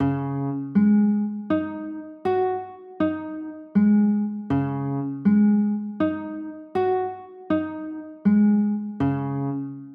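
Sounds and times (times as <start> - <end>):
A-flat 7sus4 chords: 0.0 - 9.9.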